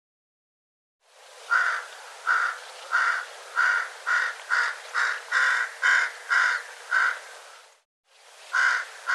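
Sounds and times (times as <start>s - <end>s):
background hiss: 1.0s - 9.1s
bird calling with hoarse caws: 1.5s - 7.3s, 8.5s - 9.1s.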